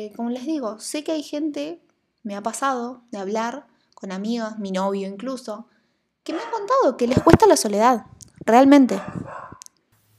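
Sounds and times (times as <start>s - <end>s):
speech: 0.0s - 9.4s
dog barking: 6.3s - 7.6s, 8.9s - 9.6s.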